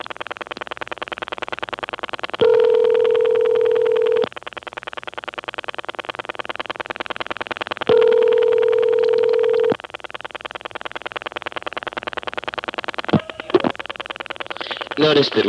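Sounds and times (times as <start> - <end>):
telephone callback circuit clicking: 2.4 - 4.3, 7.8 - 9.8
speech: 15.1 - 15.4.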